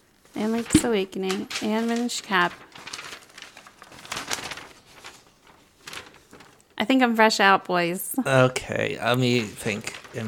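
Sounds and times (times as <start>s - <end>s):
speech: 0.4s - 2.9s, 6.8s - 10.2s
paper rustling and crinkling: 0.6s - 6.7s, 9.6s - 10.2s.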